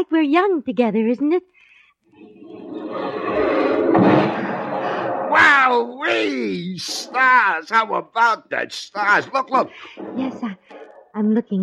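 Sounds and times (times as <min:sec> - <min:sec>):
speech: 0:00.0 - 0:04.4, 0:05.4 - 0:11.6
fireworks bursting outdoors: 0:02.6 - 0:07.3.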